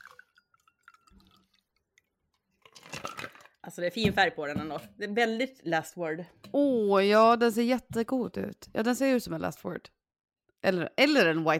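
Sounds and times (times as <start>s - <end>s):
cocktail being poured into a glass: 0.0s - 3.7s
speech: 3.7s - 10.0s, 10.6s - 11.5s.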